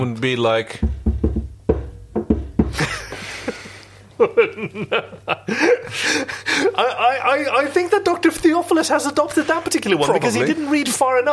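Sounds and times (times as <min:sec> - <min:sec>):
speech: 0:00.0 - 0:00.9, 0:04.2 - 0:11.3
knocking on a hard surface: 0:00.8 - 0:03.2
person chuckling with breathy laughter: 0:02.6 - 0:06.8.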